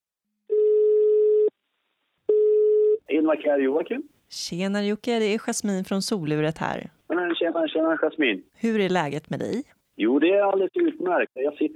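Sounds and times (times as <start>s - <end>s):
outgoing ringback tone on a telephone call: 0.5s - 1.5s, 2.3s - 3.0s
speech: 3.3s - 11.7s.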